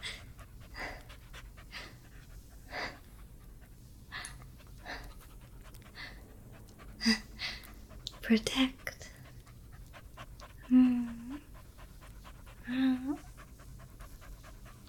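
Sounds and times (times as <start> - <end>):
large dog panting: 0.0 - 14.8
speech: 8.3 - 8.8.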